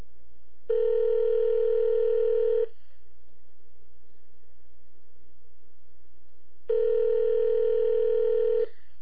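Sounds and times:
telephone ringback tone of an unanswered call: 0.7s - 2.7s, 6.7s - 8.7s.

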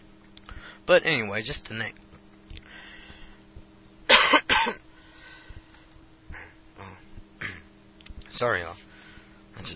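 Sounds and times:
speech: 0.8s - 2.0s, 8.4s - 8.9s
person coughing: 4.1s - 4.8s, 7.4s - 7.7s
throat clearing: 6.8s - 7.7s.

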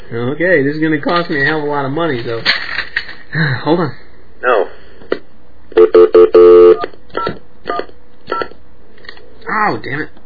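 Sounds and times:
speech: 0.1s - 2.6s, 3.3s - 4.7s, 9.5s - 10.2s
bright electronic telephone dialing tones: 5.8s - 6.8s.

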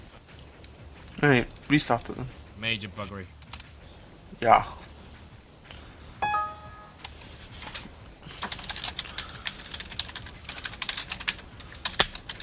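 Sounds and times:
speech: 1.2s - 3.4s, 4.4s - 4.8s
tonal beep: 6.2s - 7.0s
typing on a computer keyboard: 7.0s - 12.4s.

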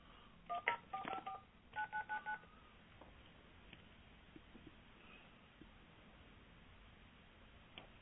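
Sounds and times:
phone keypad dialing beep tones: 0.5s - 2.4s.

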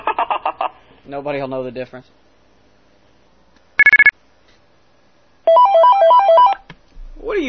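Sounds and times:
speech: 1.1s - 2.2s
bright melodic mobile phone ringtone: 3.8s - 4.1s, 5.5s - 6.6s
rapid electronic beeps: 3.8s - 4.1s.

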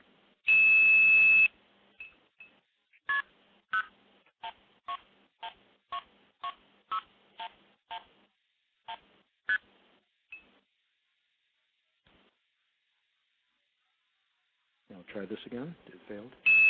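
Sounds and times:
telephone DTMF tones dialing into a switch: 0.5s - 1.5s
speech: 15.2s - 16.6s.

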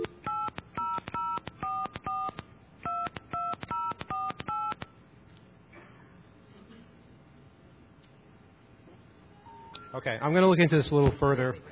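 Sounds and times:
telephone keypad tones: 0.0s - 4.9s
speech: 10.0s - 11.7s.

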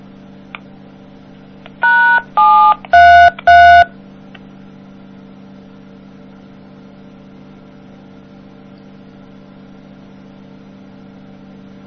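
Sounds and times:
faint hum: 0.0s - 11.8s
telephone keypad dialing tones: 1.8s - 3.9s.

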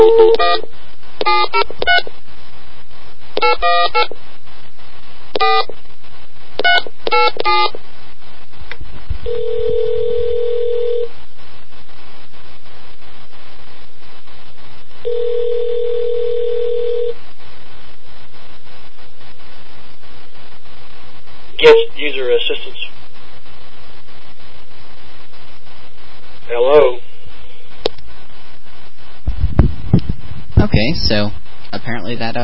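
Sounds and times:
telephone ringing tones: 0.0s - 0.6s, 1.2s - 2.1s, 3.4s - 4.1s, 5.4s - 5.7s, 9.3s - 11.1s, 15.1s - 17.2s
speech: 0.0s - 2.2s, 3.4s - 4.3s, 5.4s - 5.8s, 6.6s - 7.9s, 9.2s - 10.7s, 21.6s - 22.9s, 26.5s - 27.1s, 30.6s - 32.4s
steady telephone line hum: 0.0s - 2.2s, 3.4s - 4.2s, 5.3s - 5.8s, 6.6s - 7.8s, 9.1s - 11.2s, 15.0s - 17.2s.

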